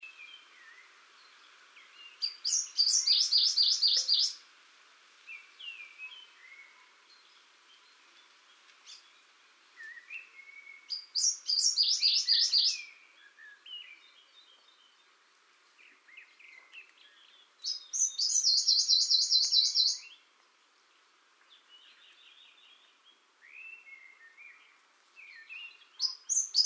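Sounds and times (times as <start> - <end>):
Blyth's leaf warbler Phylloscopus reguloides singing in Hebei China: 0.0 - 4.4, 5.3 - 15.2, 15.8 - 20.3, 21.5 - 26.6.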